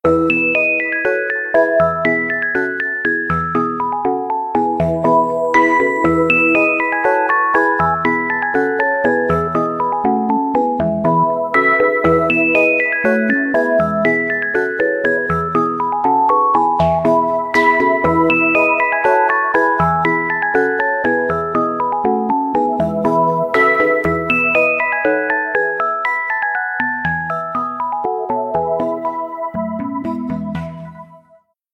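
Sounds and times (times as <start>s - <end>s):
lullaby ringtone of a mobile phone: 0.1s - 31.3s.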